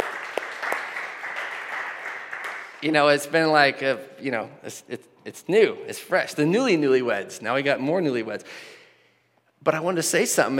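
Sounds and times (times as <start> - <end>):
room full of people clapping for newlyweds: 0.0 - 3.2
speech: 2.8 - 8.8, 9.6 - 10.5.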